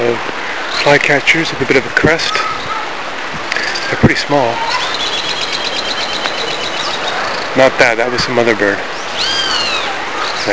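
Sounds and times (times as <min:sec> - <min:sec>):
steady hiss: 0:00.0 - 0:10.5
unidentified bird whistling in Brazil: 0:02.3 - 0:02.8, 0:04.5 - 0:07.6, 0:09.0 - 0:10.5.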